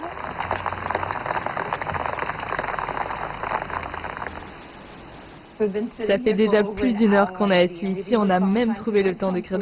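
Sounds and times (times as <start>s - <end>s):
steady rain falling: 0.0s - 5.6s
faint low hum: 0.0s - 9.6s
speech: 5.6s - 9.6s.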